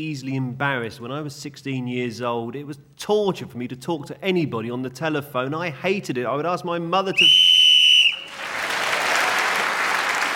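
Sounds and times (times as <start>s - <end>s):
speech: 0.0s - 7.5s
shrill whistle blast blown to end a round of a game: 7.1s - 8.4s
audience applause: 8.0s - 10.3s.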